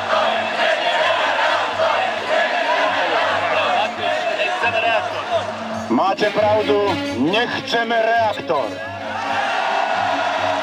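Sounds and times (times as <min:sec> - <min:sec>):
large crowd roaring and shouting: 0:00.0 - 0:06.0, 0:08.8 - 0:10.6
speech: 0:06.0 - 0:09.4.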